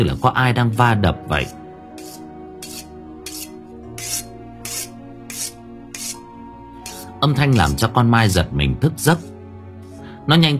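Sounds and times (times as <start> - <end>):
speech: 0.0 - 1.6, 7.2 - 9.3, 10.3 - 10.5
knife being sharpened at night: 1.9 - 6.2, 6.8 - 7.1.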